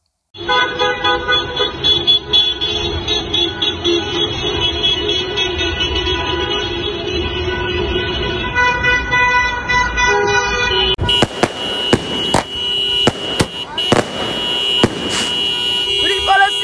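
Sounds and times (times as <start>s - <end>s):
low rumble of vehicles: 0.0s - 16.6s
many car horns honking in a street parade: 0.3s - 16.6s.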